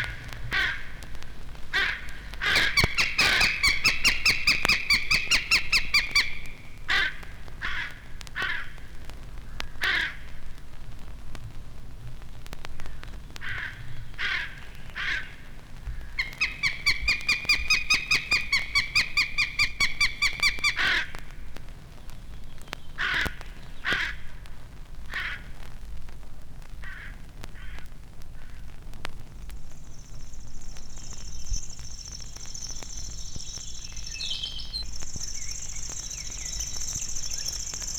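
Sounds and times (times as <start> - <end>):
crows cawing in harsh scattered calls: 0.0 - 8.9, 9.5 - 10.4, 12.8 - 21.3, 23.0 - 24.4, 25.1 - 25.5, 26.8 - 28.7
steady outdoor hiss: 0.0 - 37.9.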